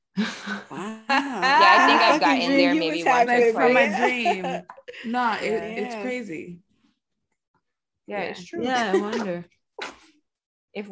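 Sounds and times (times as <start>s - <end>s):
speech: 0.2s - 1.0s, 2.2s - 6.6s, 8.1s - 9.9s
laughter: 0.3s - 5.5s, 8.6s - 10.0s
person sneezing: 9.0s - 10.2s.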